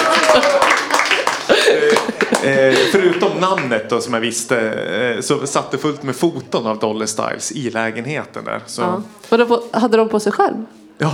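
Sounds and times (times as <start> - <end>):
crowd voices and cheers: 0.0 - 3.6
applause sound effect: 0.0 - 3.8
laughter: 0.0 - 7.4
speech: 2.5 - 11.1.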